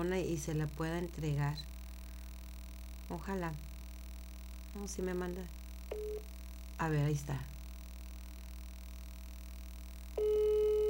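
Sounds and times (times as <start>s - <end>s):
speech: 0.0s - 1.8s, 3.1s - 3.7s, 4.7s - 7.5s
telephone ringback tone while placing a call: 10.2s - 10.8s.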